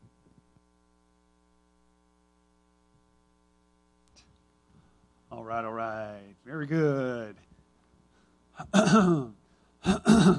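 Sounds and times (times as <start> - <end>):
speech: 5.3 - 7.5, 8.6 - 10.3
person clearing throat: 8.6 - 10.3.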